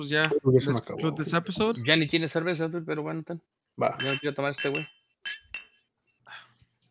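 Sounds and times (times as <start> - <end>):
speech: 0.0 - 5.4
glasses tapped together in a toast: 4.0 - 5.9.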